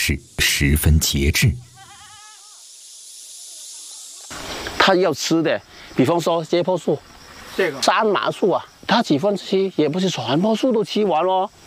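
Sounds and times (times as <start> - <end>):
speech: 0.0 - 1.7, 4.8 - 11.6
faint steady hiss: 0.0 - 11.6
stone goat on karst rock mountains bleating: 1.6 - 2.6.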